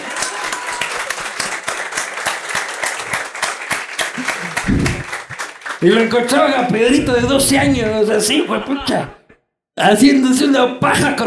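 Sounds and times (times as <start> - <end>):
crowd applauding: 0.0 - 7.9
laughter: 4.0 - 5.4, 6.9 - 9.2
speech: 5.8 - 9.2, 9.8 - 11.2.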